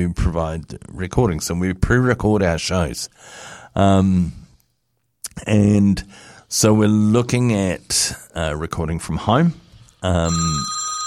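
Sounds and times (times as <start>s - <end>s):
speech: 0.0s - 4.4s, 5.4s - 10.8s
telephone ringing: 10.2s - 11.0s.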